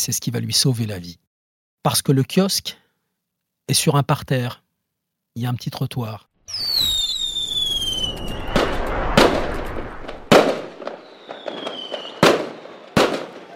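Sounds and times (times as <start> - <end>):
speech: 0.0 - 1.2, 1.8 - 2.8, 3.7 - 4.6, 5.4 - 6.3
fireworks exploding at the end of a fireworks display: 6.5 - 13.5.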